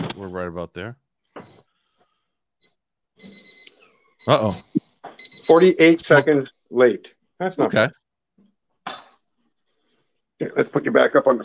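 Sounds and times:
speech: 0.2 - 1.0, 4.2 - 4.8, 5.5 - 8.0, 10.4 - 11.4
electronic kitchen timer alarm beeping in a house during cooking: 2.6 - 6.6.

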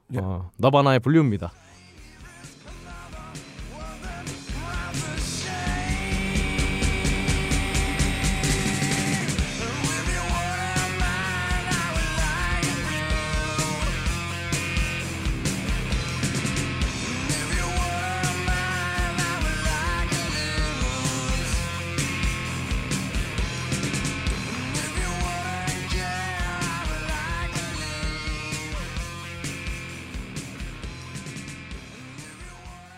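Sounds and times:
speech: 0.1 - 1.6
recorded rock song: 1.6 - 32.9
person singing a wavering melody: 1.7 - 14.2, 17.0 - 21.8, 24.5 - 29.1, 32.0 - 32.9
dense guitars: 1.9 - 32.9
pounding drums: 3.3 - 31.9.

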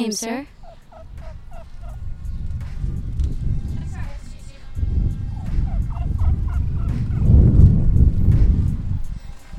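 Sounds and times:
speech: 0.0 - 0.6
low rumbling outdoor background: 0.4 - 9.5
wild turkeys gobbling: 0.5 - 2.2, 5.6 - 7.2.

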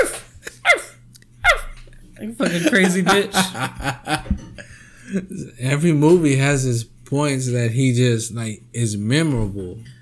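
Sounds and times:
person imitating a dog barking: 0.0 - 1.8
faint low hum: 0.0 - 9.9
speech: 2.2 - 4.4, 5.1 - 9.9
laughter: 2.4 - 5.4.

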